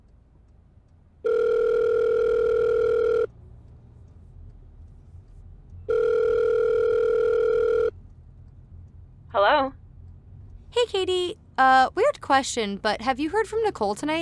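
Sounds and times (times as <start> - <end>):
phone call ringback tones on speakerphone: 1.2 - 3.3, 5.9 - 8.0
speech: 11.0 - 14.2.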